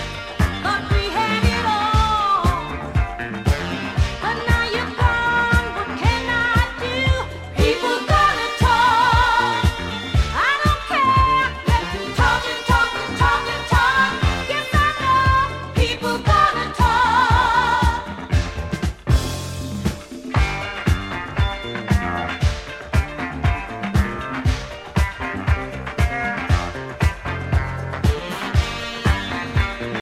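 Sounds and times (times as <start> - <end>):
West African afro funk disco boogie music: 0.0 - 29.9.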